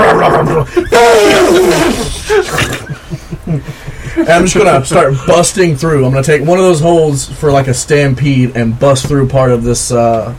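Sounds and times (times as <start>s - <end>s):
man grunting: 0.0s - 2.8s
man imitating an enraged elephant with a strained roaring bellow: 0.0s - 2.8s
laughter: 0.0s - 5.5s
speech: 0.6s - 2.5s, 4.3s - 10.3s.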